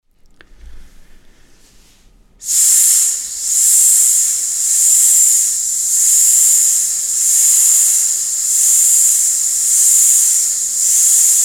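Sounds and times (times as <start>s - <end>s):
pulsing tone: 2.5s - 11.4s.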